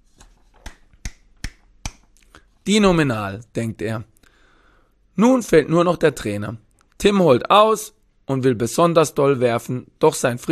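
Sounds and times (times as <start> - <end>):
lone person clapping in applause: 0.6 - 2.2
speech: 2.6 - 4.1, 5.2 - 10.5.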